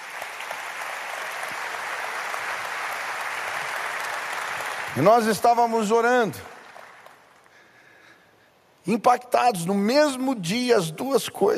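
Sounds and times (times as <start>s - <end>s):
church audience applauding: 0.0s - 7.6s
speech: 5.0s - 6.5s, 8.8s - 11.5s.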